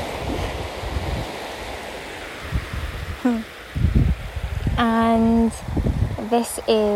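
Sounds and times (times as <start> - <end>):
gentle water lapping against a shore: 0.0 - 6.9
small waves breaking with soft low thuds: 0.0 - 6.9
speech: 3.2 - 3.5, 6.3 - 6.9.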